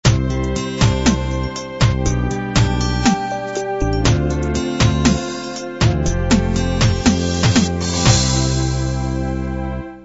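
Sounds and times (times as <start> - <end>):
sixteen beat ballad ending: 0.0 - 9.2.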